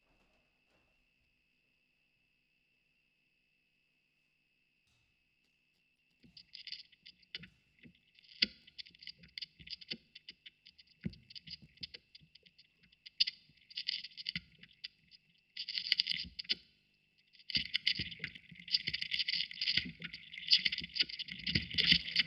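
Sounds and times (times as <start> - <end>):
vinyl record noise: 6.2 - 16.6, 17.3 - 22.2.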